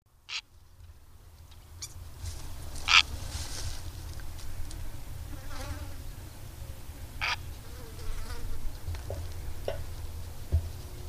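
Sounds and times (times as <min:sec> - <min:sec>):
low background hum: 0:00.1 - 0:11.0
purple heron uttering hoarse croaks: 0:02.8 - 0:03.1, 0:07.2 - 0:07.5.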